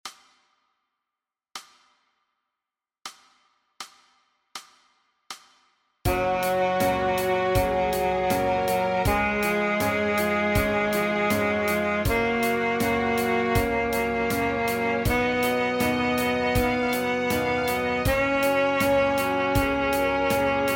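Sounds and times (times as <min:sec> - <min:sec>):
E flat scale: 0:06.1 - 0:20.7.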